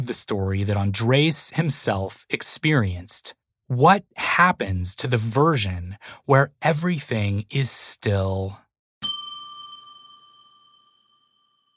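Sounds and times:
speech: 0.0s - 8.6s
single bell struck once, close and clear: 9.0s - 11.7s.

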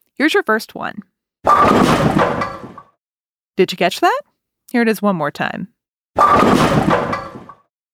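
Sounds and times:
speech: 0.2s - 2.4s, 3.6s - 7.1s
bowling ball crashing into wooden bowling pins: 1.5s - 2.9s, 6.2s - 7.6s.

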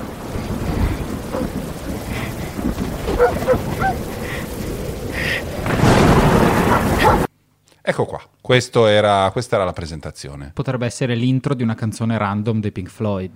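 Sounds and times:
low rumbles in a forest: 0.0s - 7.3s
steady rain in a forest: 0.0s - 7.3s
speech: 3.2s - 3.7s, 7.9s - 13.3s
dog barks and yelps: 3.2s - 4.0s, 6.7s - 7.3s.

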